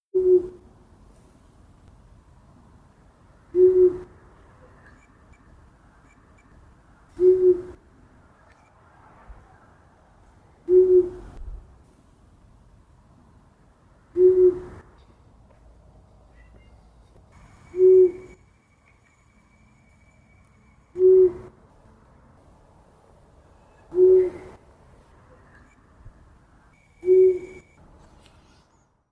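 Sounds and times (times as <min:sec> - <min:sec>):
long-eared owls calling: 0:03.6 - 0:04.1, 0:07.2 - 0:07.8, 0:10.7 - 0:11.2, 0:14.2 - 0:14.8, 0:17.4 - 0:21.6, 0:23.8 - 0:24.6, 0:26.9 - 0:27.8.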